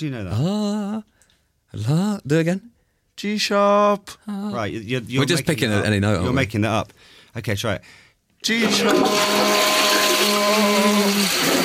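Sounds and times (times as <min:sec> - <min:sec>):
speech: 0:00.0 - 0:09.8
toilet flushing: 0:08.5 - 0:11.6.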